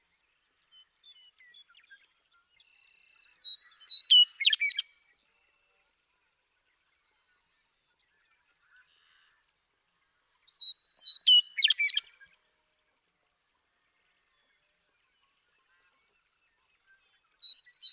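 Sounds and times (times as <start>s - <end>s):
male western meadowlark singing in Sierra Valley, eastern California: 2.7s - 4.9s, 10.0s - 12.2s, 16.8s - 17.9s.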